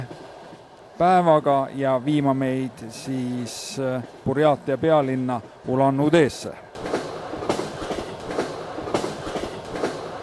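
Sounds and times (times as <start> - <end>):
passenger train rolling on rails: 0.0 - 10.2
speech: 1.0 - 6.7
regular clacking wheel beats of passenger train: 6.8 - 10.2.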